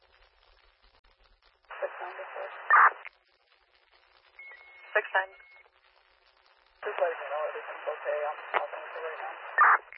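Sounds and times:
hissing radio static with crackles and pops: 0:00.5 - 0:09.9
garbled radio voice transmission: 0:01.7 - 0:03.1, 0:06.8 - 0:09.9
speech: 0:05.1 - 0:05.6.

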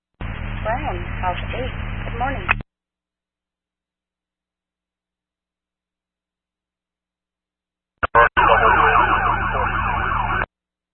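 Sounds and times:
speech: 0:00.8 - 0:02.6
emergency siren wailing: 0:08.0 - 0:10.5.

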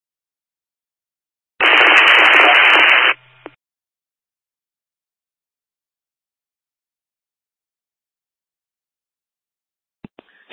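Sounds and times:
faint crackle: 0:01.6 - 0:03.6
loud burst of radio static: 0:01.6 - 0:03.6.

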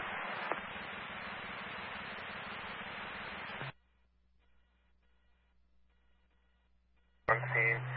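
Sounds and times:
hissing radio static: 0:00.0 - 0:03.8, 0:07.3 - 0:07.9
low steady hum: 0:00.0 - 0:07.9.

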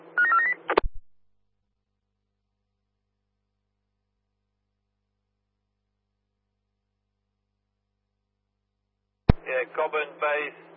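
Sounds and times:
telephone keypad beeps at shifting pitches: 0:00.2 - 0:01.0
speech: 0:09.6 - 0:10.7.

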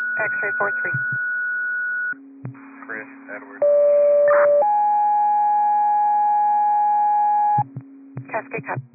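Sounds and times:
radio dispatch alert tones paging a medical unit: 0:00.2 - 0:01.2, 0:03.6 - 0:08.9
speech: 0:00.2 - 0:01.4, 0:08.5 - 0:08.9.

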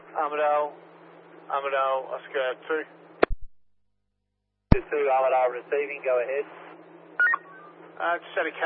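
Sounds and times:
speech: 0:00.2 - 0:00.9, 0:01.5 - 0:03.0, 0:04.8 - 0:06.6, 0:08.0 - 0:08.6
touch-tone telephone keypad dialing beeps: 0:07.2 - 0:07.5.

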